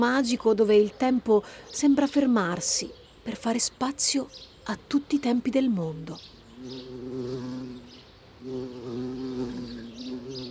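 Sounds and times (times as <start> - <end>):
speech: 0.0 - 7.7
insect buzzing: 6.4 - 10.4.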